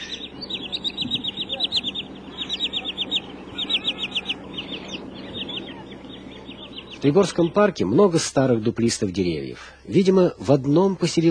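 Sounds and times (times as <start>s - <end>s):
green sandpiper calls: 0.0s - 7.8s
low steady rumble: 0.0s - 11.2s
speech: 7.0s - 11.2s.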